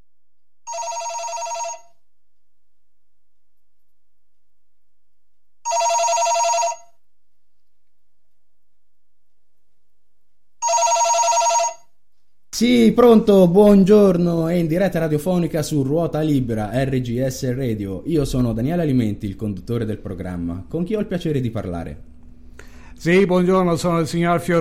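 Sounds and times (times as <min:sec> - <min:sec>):
telephone ringing for an incoming call to a radio show: 0:00.7 - 0:02.0, 0:05.7 - 0:07.0, 0:10.6 - 0:11.9
speech: 0:12.6 - 0:22.1, 0:23.0 - 0:24.5.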